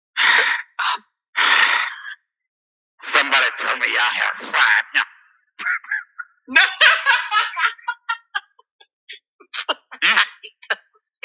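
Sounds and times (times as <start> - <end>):
person imitating out-of-breath gasping and panting: 0.2 - 0.7, 1.4 - 2.1
laughter: 3.0 - 11.2
speech: 3.8 - 7.8.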